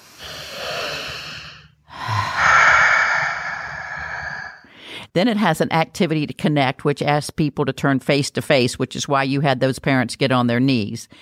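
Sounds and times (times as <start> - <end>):
person breathing deeply in and out as a breathing exercise: 0.0 - 5.1
speech: 5.2 - 11.1.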